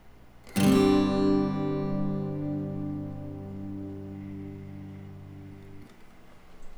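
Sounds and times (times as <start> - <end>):
guitar playing a Gsus4 chord: 0.6 - 5.9.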